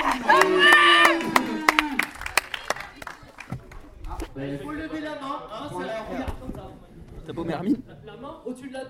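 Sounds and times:
small group clapping hands: 0.0 - 4.0
speech: 7.3 - 8.8.

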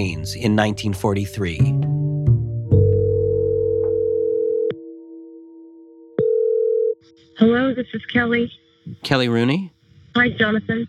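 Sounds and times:
speech: 0.0 - 1.9, 7.4 - 10.8
telephone dial tone as a call is placed: 2.9 - 4.9, 6.2 - 7.2.

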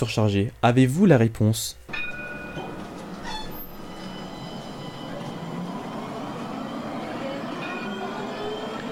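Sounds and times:
speech: 0.0 - 1.8
tram rumbling along its rails: 1.9 - 8.9
faint metallic squeals and tonal whines of a tram: 2.0 - 8.9.

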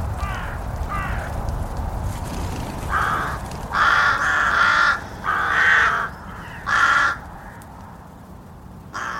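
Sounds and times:
rooks cawing: 0.0 - 1.4, 2.8 - 8.0, 8.9 - 9.1
steady low outdoor rumble: 0.0 - 9.1.

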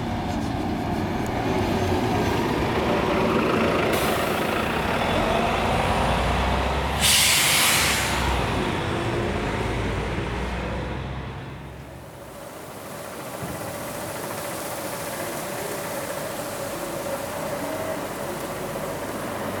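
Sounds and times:
heavy bus engine rumbling: 0.0 - 19.5
bus air-brake hiss: 4.0 - 4.6, 7.0 - 8.4.

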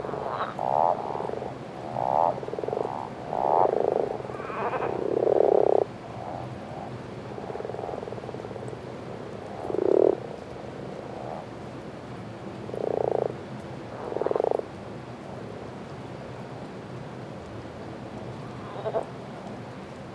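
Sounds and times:
common toads and common frogs calling in a chorus: 0.0 - 14.8, 18.2 - 19.2.

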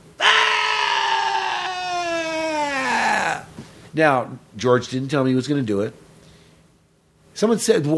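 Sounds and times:
piercing scream dubbed into a recording: 0.2 - 3.6
speech: 4.0 - 6.0, 7.4 - 7.9.

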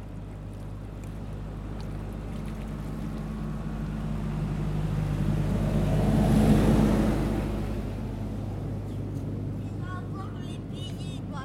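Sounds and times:
canal boat engine droning while reversing away from the quay: 0.0 - 11.4
churning wash of water from a reversing canal boat: 0.0 - 11.4.

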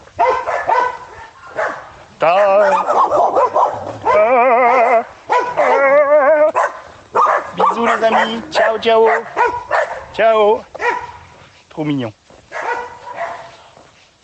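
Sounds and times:
several dogs barking and yipping with howl-like cries: 0.0 - 11.6, 12.4 - 13.6
speech: 2.2 - 2.6, 8.1 - 9.5, 10.2 - 10.7, 11.8 - 12.2.

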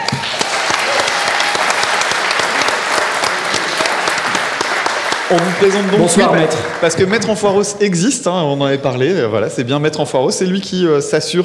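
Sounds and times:
crowd applauding a court bailiff: 0.0 - 7.8
speech: 5.3 - 11.4.

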